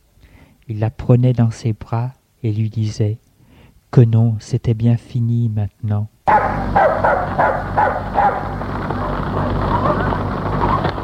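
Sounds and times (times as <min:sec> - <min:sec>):
low rumbling noise: 0:00.0 - 0:11.0
speech: 0:00.7 - 0:03.2, 0:03.9 - 0:08.6
large black dog barking in fields: 0:06.3 - 0:10.8.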